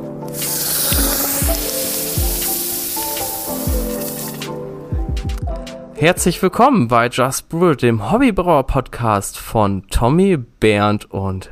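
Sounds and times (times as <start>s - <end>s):
hot basalt stone sizzling in beer wort: 0.2s - 4.5s
speech: 6.0s - 11.4s.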